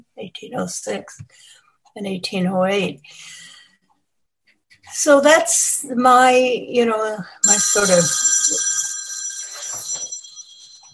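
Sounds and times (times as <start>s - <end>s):
speech: 0.2s - 3.6s, 4.8s - 8.8s
faint scattered sounds: 7.4s - 10.9s
mobile phone ringing: 7.4s - 10.9s.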